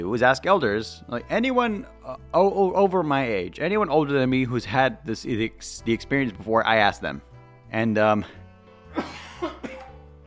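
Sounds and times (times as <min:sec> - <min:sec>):
speech: 0:00.0 - 0:09.7
loud cough: 0:09.0 - 0:10.0.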